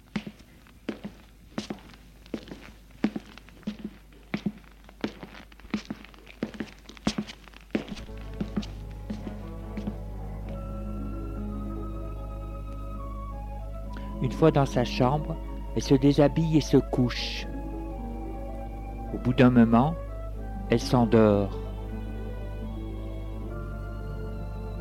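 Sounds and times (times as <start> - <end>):
footsteps of a woman walking out of a room: 0.0 - 10.8
sustained musical tone: 8.0 - 24.7
speech: 14.3 - 17.4, 19.2 - 20.0, 20.7 - 21.6.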